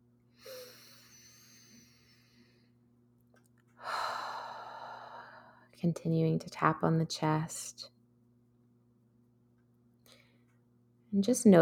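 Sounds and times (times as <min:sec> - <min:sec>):
deep breath during a guided relaxation: 0:00.4 - 0:02.7, 0:03.8 - 0:05.7
speech: 0:05.8 - 0:07.9, 0:11.1 - 0:11.6.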